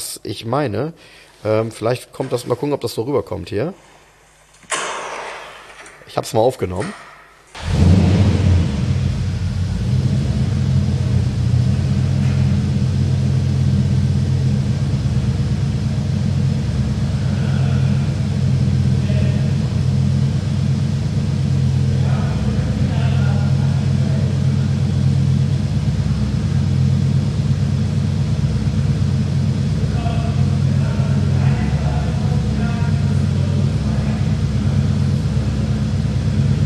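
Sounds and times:
speech: 0.2 - 3.9, 6.1 - 7.8
big 5-litre V8 car engine rumbling at idle: 7.5 - 36.6.

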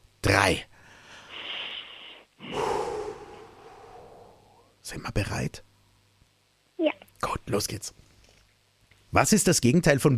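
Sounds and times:
speech: 0.4 - 0.7, 4.9 - 5.7, 6.8 - 8.0, 9.1 - 10.1
several people taking a deep breath in and out together: 0.8 - 4.7.

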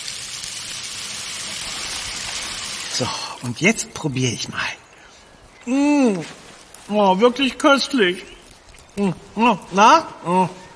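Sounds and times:
tap water running over field-picked berries being rinsed: 0.0 - 3.1
speech: 3.0 - 4.8, 5.6 - 8.4, 9.0 - 10.6.

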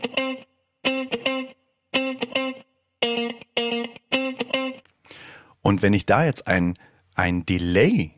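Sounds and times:
funky electric guitar riff with choppy chord stabs: 0.0 - 5.3
speech: 5.7 - 8.1.

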